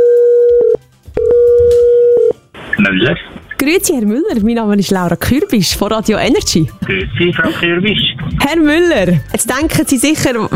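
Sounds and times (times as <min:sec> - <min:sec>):
outgoing telephone call ringing out: 0:00.0 - 0:02.4
speech: 0:02.8 - 0:10.5.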